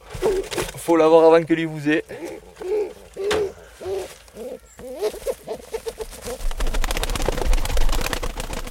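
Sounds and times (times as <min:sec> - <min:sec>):
pigeon cooing: 0:00.0 - 0:00.7, 0:02.1 - 0:06.7
loud flapping and scuffling: 0:00.0 - 0:01.0, 0:02.2 - 0:08.6
speech: 0:00.4 - 0:02.5.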